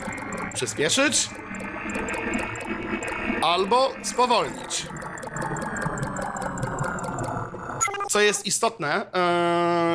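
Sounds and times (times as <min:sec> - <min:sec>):
rapid regular pulsing electronic chirp: 0:00.0 - 0:07.4
steady dense electronic drone of a sci-fi alien spaceship: 0:00.0 - 0:08.1
speech: 0:00.6 - 0:05.1, 0:08.1 - 0:09.9.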